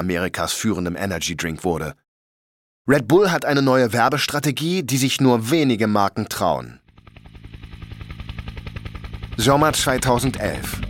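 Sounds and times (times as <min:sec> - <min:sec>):
speech: 0:00.0 - 0:02.0, 0:02.9 - 0:06.8, 0:09.4 - 0:10.8
helicopter rotor thumping: 0:06.8 - 0:10.8.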